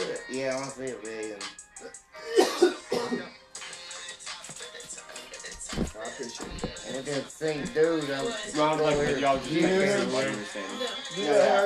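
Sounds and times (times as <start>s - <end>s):
speech: 0.3s - 3.2s, 6.1s - 11.6s
harsh coughs: 2.2s - 3.3s
throat clearing: 2.2s - 3.3s
sound: 4.6s - 11.6s.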